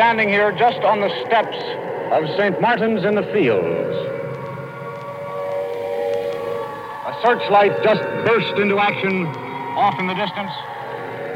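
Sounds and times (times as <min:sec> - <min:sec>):
speech: 0:00.0 - 0:03.8, 0:07.1 - 0:10.8
air raid sirens wailing over Trafalgar Square: 0:00.0 - 0:11.3.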